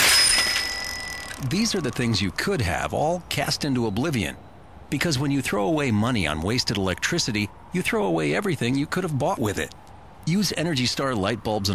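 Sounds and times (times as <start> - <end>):
new child's bicycle thrown off a building crashing with metallic clatter: 0.0 - 1.8
child's bicycle bell ringing: 0.0 - 2.8
speech: 1.4 - 11.7.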